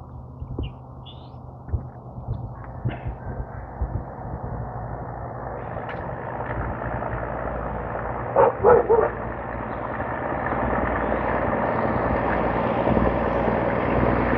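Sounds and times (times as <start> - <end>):
steady loud engine-like rumble: 0.0 - 14.3
dog barking, possibly a pit bull: 8.4 - 9.2.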